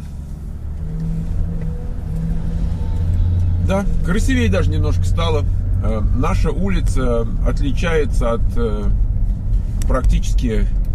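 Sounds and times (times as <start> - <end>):
car driving past on a street: 0.2 - 5.9
speech: 3.7 - 9.1, 9.9 - 10.8.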